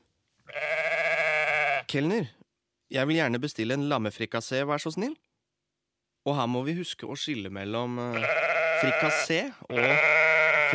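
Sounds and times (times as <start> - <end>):
person imitating a sheep bleating: 0.5 - 1.9, 8.1 - 10.7
speech: 1.9 - 5.3, 6.2 - 10.7.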